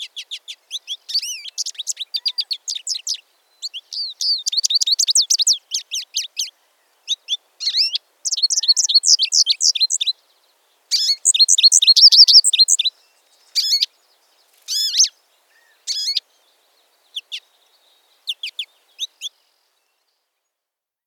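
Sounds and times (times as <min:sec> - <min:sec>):
American goldfinch twittering and warbling: 0:00.1 - 0:10.2, 0:10.9 - 0:13.0, 0:13.5 - 0:13.9, 0:14.7 - 0:16.3, 0:17.1 - 0:19.4.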